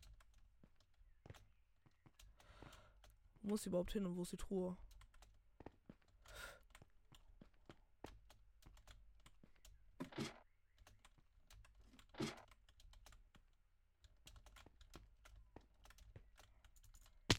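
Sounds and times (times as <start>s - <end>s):
computer keyboard keys being pressed: 1.3s - 3.6s, 4.8s - 5.4s, 8.1s - 9.8s, 10.8s - 17.2s
speech: 3.4s - 4.8s.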